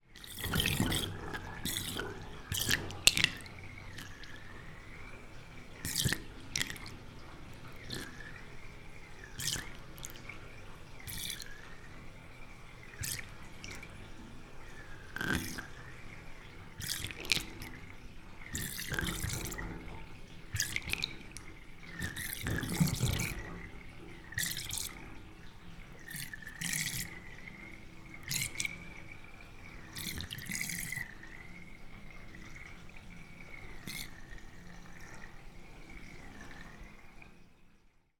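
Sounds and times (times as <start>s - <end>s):
household bath drain water whirlpool at the plug: 0.0s - 38.1s.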